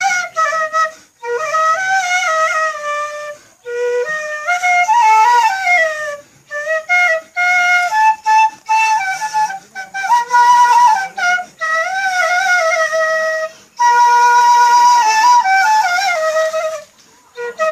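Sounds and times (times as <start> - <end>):
flute music ringtone: 0.0 - 17.6.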